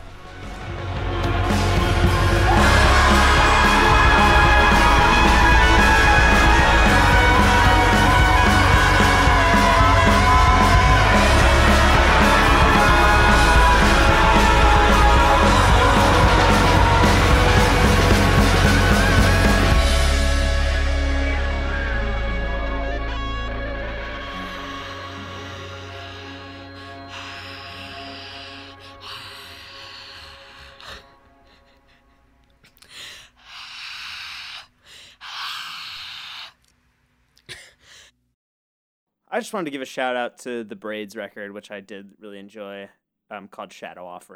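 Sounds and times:
large crowd screaming together: 1.4s - 29.9s
speech: 39.4s - 44.3s.

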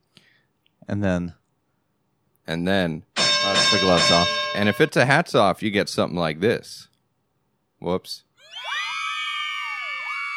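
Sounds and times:
speech: 0.9s - 1.4s, 2.5s - 6.9s, 7.8s - 8.3s
several women screaming high-pitched: 8.4s - 10.3s.

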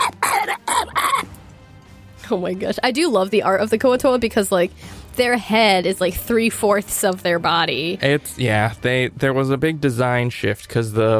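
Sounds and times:
voice mimicking a poisoned fish-like creature coughing and hacking: 0.0s - 1.3s
speech: 2.3s - 11.1s.

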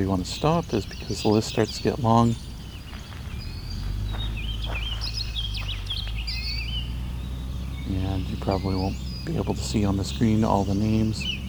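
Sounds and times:
speech: 0.0s - 2.5s, 8.0s - 11.4s
goldfinch singing: 0.0s - 11.4s
low rumble: 0.0s - 11.4s.

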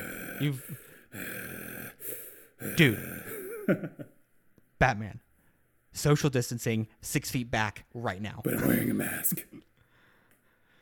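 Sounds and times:
voiced gasp: 0.0s - 3.6s
heavy breathing: 0.0s - 3.7s, 9.8s - 10.7s
speech: 0.4s - 1.5s, 2.6s - 4.2s, 4.8s - 5.2s, 5.9s - 9.7s.

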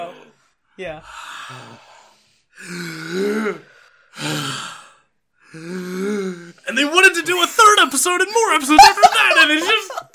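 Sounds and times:
several people taking deep breaths together: 0.0s - 6.6s
speech: 0.8s - 1.9s, 2.6s - 4.7s, 5.5s - 10.1s
laughter: 8.3s - 10.1s.

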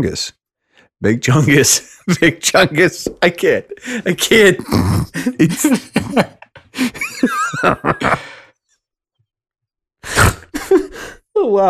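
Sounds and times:
speech: 0.0s - 0.4s, 1.0s - 8.4s, 10.1s - 11.6s
breathy wheezing laughter with squeaky whinny-like gasps: 3.8s - 8.5s, 10.1s - 11.2s
loud nasal snort: 4.6s - 5.4s, 10.0s - 10.6s.

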